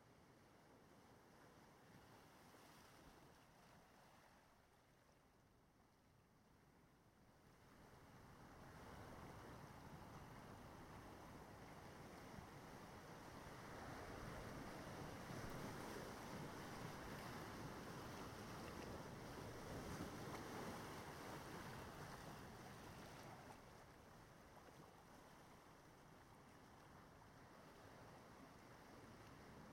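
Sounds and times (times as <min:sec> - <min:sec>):
wind: 0:00.0 - 0:29.7
ocean waves rushing onto shore: 0:08.0 - 0:24.0.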